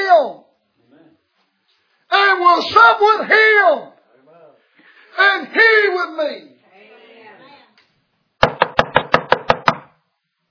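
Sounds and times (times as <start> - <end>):
speech: 2.3 - 3.9, 5.2 - 6.5
sharp knocks on a door: 8.4 - 10.0.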